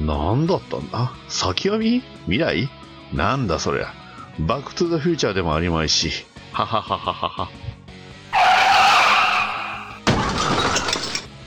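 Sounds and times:
speech: 0.1s - 7.6s
car tires screeching in a long skid: 8.3s - 10.0s
shattering and rattling debris: 10.0s - 11.4s
car hitting a person: 10.1s - 11.3s.

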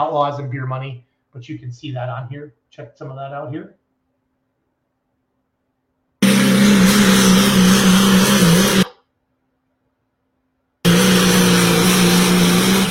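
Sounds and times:
speech: 0.0s - 3.8s
diesel pulling truck engine revving at a truck pull: 6.2s - 9.0s, 10.8s - 12.9s.

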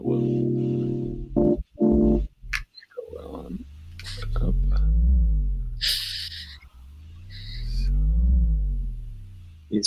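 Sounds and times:
deep synthesizer drone with resonance turned up: 0.0s - 2.5s, 3.4s - 6.0s, 7.1s - 9.8s.

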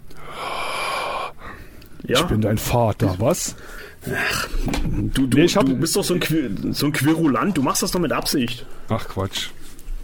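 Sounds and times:
raspy hollow hissing breathing: 0.1s - 1.9s, 3.5s - 4.6s
speech: 2.1s - 9.6s.

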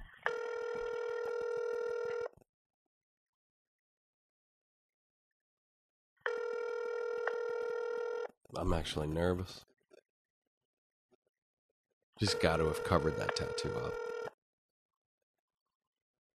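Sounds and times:
outgoing phone call ringback tone through a phone speaker: 0.2s - 2.3s, 6.3s - 8.3s, 12.3s - 14.4s
speech: 8.6s - 9.7s, 12.2s - 14.2s.

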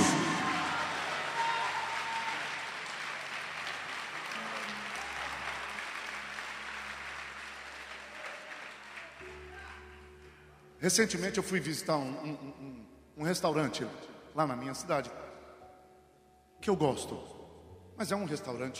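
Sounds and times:
audience applauding: 0.0s - 10.4s
speech: 10.8s - 15.2s, 16.6s - 17.4s, 18.0s - 18.7s.

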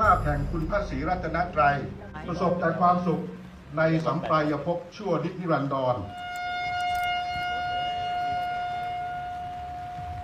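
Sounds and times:
speech: 0.2s - 6.2s
military honor guard bugle playing a call at a memorial ceremony: 6.0s - 10.2s.

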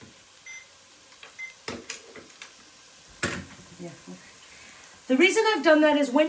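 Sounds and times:
kitchen timer short faint electronic beeps: 0.4s - 0.7s, 1.4s - 1.6s
speech: 3.8s - 4.3s, 5.1s - 6.2s.

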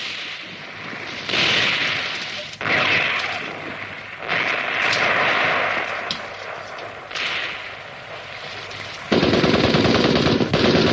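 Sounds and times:
machine-gun fire from militiamen atop a cliff: 1.2s - 6.4s, 9.0s - 10.9s.

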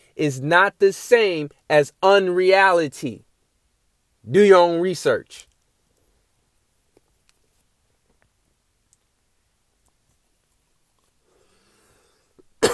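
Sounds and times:
speech: 0.2s - 3.3s, 4.2s - 5.5s
faint clicks: 6.9s - 9.1s.

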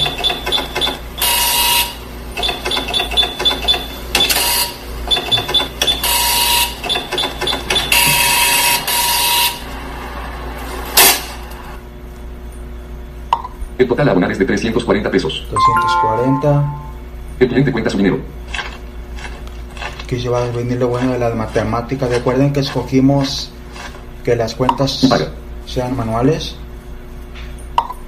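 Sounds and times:
cash register printing receipt: 0.0s - 9.6s
speech: 13.9s - 18.4s, 20.1s - 23.6s, 24.2s - 26.6s.

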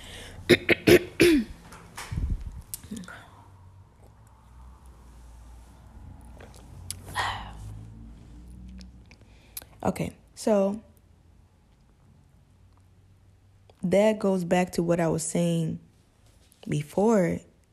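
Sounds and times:
person clearing throat: 0.5s - 1.6s
person coughing: 0.5s - 1.6s
speech: 9.9s - 10.9s, 13.9s - 15.8s, 16.6s - 17.5s.

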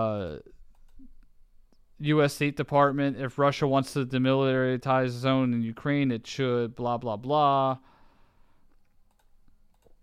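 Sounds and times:
speech: 0.0s - 1.1s, 2.0s - 7.9s
steady low hiss: 0.0s - 10.0s
faint computer clicks while clicking through web pages: 0.7s - 1.3s, 8.7s - 10.0s.

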